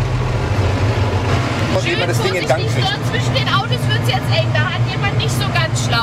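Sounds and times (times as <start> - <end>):
tractor engine rumbling while driving slowly past parked cars: 0.0 - 6.0
crowd of people chattering and calling out: 1.5 - 6.0.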